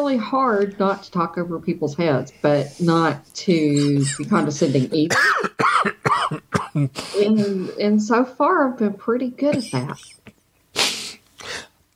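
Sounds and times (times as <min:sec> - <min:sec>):
speech: 0:00.0 - 0:10.2
dry raspy cough from a dry throat: 0:03.8 - 0:07.4, 0:09.5 - 0:11.2.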